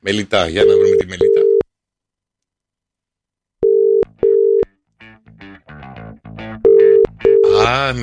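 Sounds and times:
speech: 0:00.0 - 0:01.4, 0:07.7 - 0:08.0
phone ringback tone beeps: 0:00.6 - 0:01.6, 0:03.6 - 0:04.7, 0:06.6 - 0:07.6.

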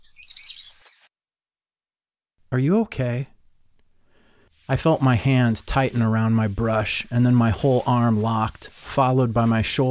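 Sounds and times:
birds twittering outside: 0:00.0 - 0:01.1, 0:04.6 - 0:09.8
speech: 0:02.5 - 0:03.3, 0:04.7 - 0:09.8.

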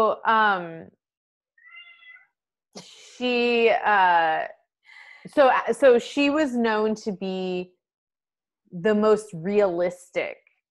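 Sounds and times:
speech: 0:00.0 - 0:01.0, 0:02.8 - 0:04.6, 0:05.2 - 0:07.8, 0:08.7 - 0:10.4
male cat meowing: 0:01.6 - 0:02.3.

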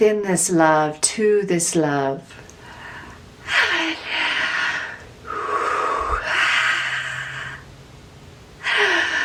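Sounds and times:
speech: 0:00.0 - 0:02.4
deep breathing during a guided meditation: 0:02.6 - 0:07.7, 0:08.6 - 0:09.2.

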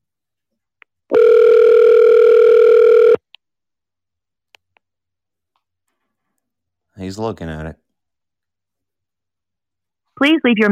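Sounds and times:
telephone ringback tone: 0:01.1 - 0:03.2
speech: 0:07.2 - 0:07.8, 0:10.2 - 0:10.7.

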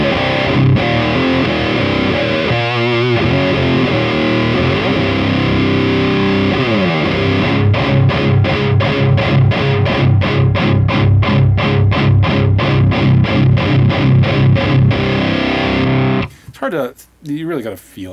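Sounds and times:
fuzz-distorted electric guitar through a fuzz pedal with mid-range boost: 0:00.0 - 0:16.4
speech: 0:16.7 - 0:18.1.

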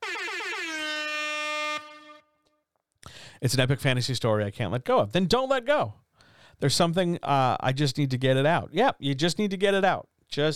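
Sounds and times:
air horn blast: 0:00.0 - 0:02.5
speech: 0:03.4 - 0:06.0, 0:06.6 - 0:10.5.

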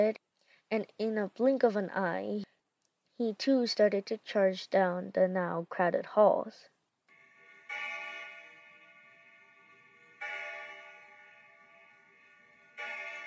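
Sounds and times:
speech: 0:00.0 - 0:02.5, 0:03.2 - 0:06.7
large building bell tolling: 0:07.1 - 0:13.2.

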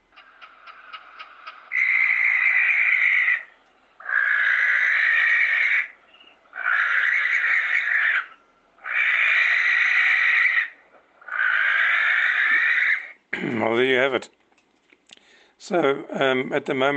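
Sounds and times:
grass owl giving harsh hissing screeches: 0:00.2 - 0:13.2
speech: 0:13.7 - 0:14.4, 0:15.7 - 0:16.9
faint quick clicks: 0:14.3 - 0:15.3.

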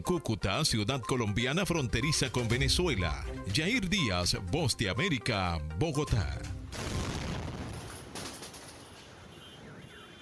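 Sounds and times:
speech: 0:00.0 - 0:06.6
car bomb in a white pickup truck exploding inside a military battalion base in Colombia: 0:06.7 - 0:09.2.

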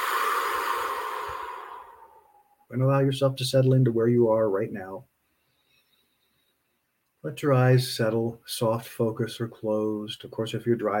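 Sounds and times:
long breath released out through the mouth: 0:00.0 - 0:02.6
speech: 0:02.7 - 0:05.1, 0:07.2 - 0:10.9.

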